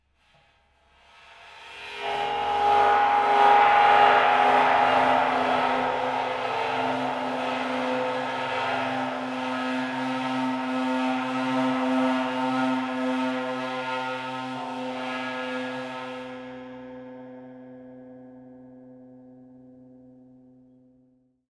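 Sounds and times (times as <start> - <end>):
bowed cymbals multiphonic to pitch: 1.6 - 16.6.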